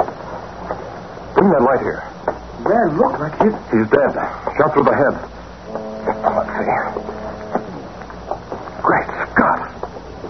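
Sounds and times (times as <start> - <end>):
speech: 1.4 - 5.8
motorboat engine droning: 5.5 - 8.9.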